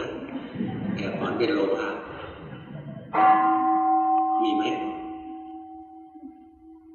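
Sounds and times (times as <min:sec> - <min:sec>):
murmured voices: 0:00.0 - 0:03.5
meditation gong struck and ringing: 0:03.2 - 0:06.9.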